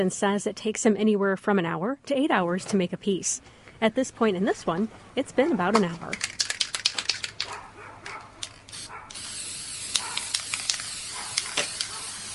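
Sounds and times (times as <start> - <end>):
speech: 0.0 - 6.4
aerosol can of gold spray paint hissing on a frame: 8.7 - 12.3.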